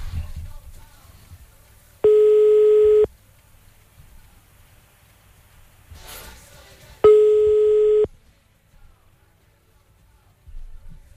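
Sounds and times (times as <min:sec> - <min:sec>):
low hum: 0:00.0 - 0:11.1
telephone ringback tone while dialing: 0:02.0 - 0:03.1, 0:07.0 - 0:08.1.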